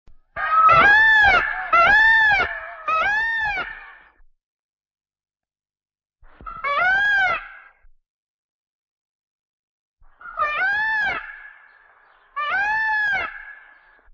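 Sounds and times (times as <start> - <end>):
peacock: 0.4 - 4.2, 6.3 - 7.9, 10.1 - 14.1.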